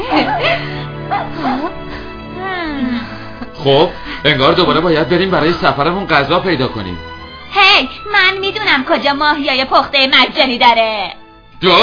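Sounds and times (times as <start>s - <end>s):
dog whimpering: 0.0s - 1.8s
speech: 0.1s - 0.7s, 3.6s - 11.8s.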